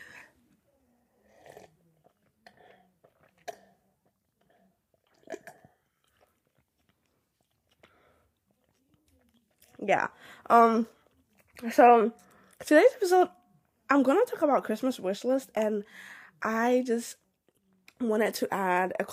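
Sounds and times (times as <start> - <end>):
person sipping a drink: 1.2 - 9.8
slurps and swallows: 1.3 - 9.8
speech: 9.9 - 11.0, 11.6 - 17.2, 18.0 - 19.1.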